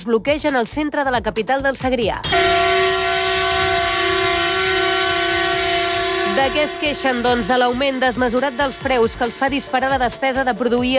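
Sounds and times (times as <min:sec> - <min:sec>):
speech: 0:00.0 - 0:03.0, 0:06.4 - 0:10.9
tractor horns blaring at a farmers' protest in Lleida: 0:02.2 - 0:10.1.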